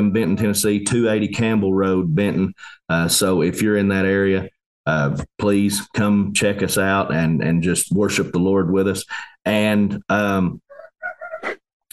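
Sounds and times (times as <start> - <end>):
speech: 0.1 - 10.6
rooster crowing: 10.7 - 11.5.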